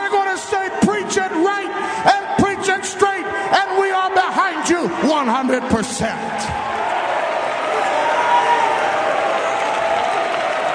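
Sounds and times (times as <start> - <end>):
large audience cheering: 0.0 - 10.7
speech: 3.5 - 6.8
large audience clapping: 6.6 - 10.7.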